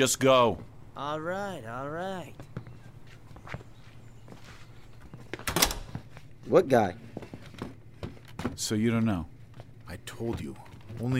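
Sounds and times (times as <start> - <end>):
speech: 0.0 - 2.5, 6.5 - 7.2, 8.5 - 9.3, 9.9 - 11.1
soft footsteps crossing a room: 2.2 - 11.1
door being pushed shut: 5.4 - 6.0.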